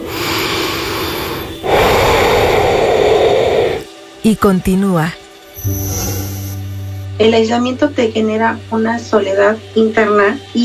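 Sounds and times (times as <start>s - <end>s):
person breathing in and out: 0.0s - 3.9s
speech: 4.2s - 6.3s, 7.2s - 10.6s.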